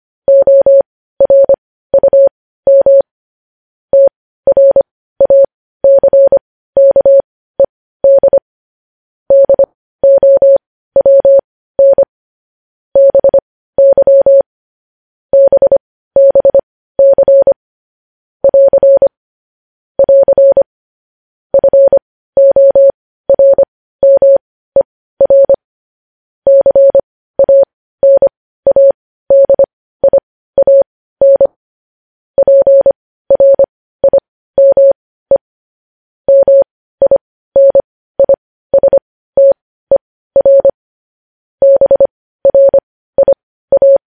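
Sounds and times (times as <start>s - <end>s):
Morse code beeps in a single steady mid-pitched tone: 0.3s - 3.1s, 4.0s - 7.2s, 8.0s - 8.4s, 9.3s - 12.1s, 13.0s - 14.5s, 15.3s - 17.6s, 18.4s - 19.2s, 20.0s - 20.7s, 21.5s - 25.6s, 26.5s - 31.6s, 32.4s - 35.4s, 36.3s - 39.6s, 40.4s - 40.8s, 41.6s - 44.0s.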